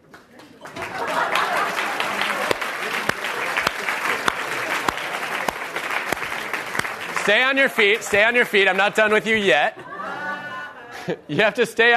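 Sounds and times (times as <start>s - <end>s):
large audience applauding: 0.0s - 9.2s
laughter: 0.6s - 5.6s, 9.4s - 11.6s
speech: 7.3s - 9.8s, 11.1s - 11.9s.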